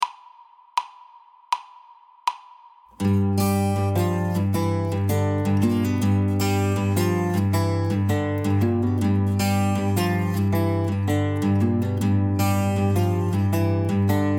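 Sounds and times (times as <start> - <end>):
guitar: 3.0 - 14.3.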